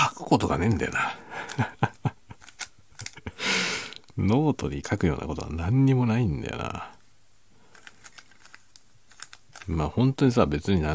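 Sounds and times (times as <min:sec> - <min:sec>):
speech: 0:00.3 - 0:01.8, 0:04.2 - 0:06.9, 0:09.7 - 0:10.9
plastic puzzle cube being twisted: 0:00.6 - 0:03.3, 0:07.6 - 0:09.8
laughter: 0:01.3 - 0:02.4.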